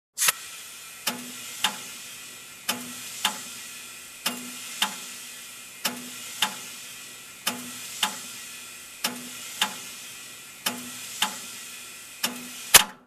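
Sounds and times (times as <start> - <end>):
machine turned on: 0.2 - 13.0
steel banging: 0.9 - 12.9.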